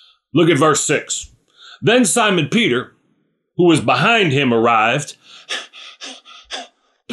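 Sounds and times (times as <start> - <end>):
speech: 0.3 - 3.0, 3.6 - 5.6
person imitating out-of-breath panting: 5.2 - 7.1.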